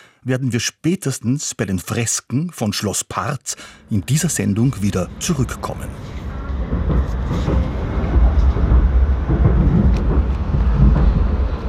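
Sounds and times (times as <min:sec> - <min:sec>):
speech: 0:00.2 - 0:06.2
Upper Austrian local train running through the Eferding basin: 0:03.5 - 0:11.6.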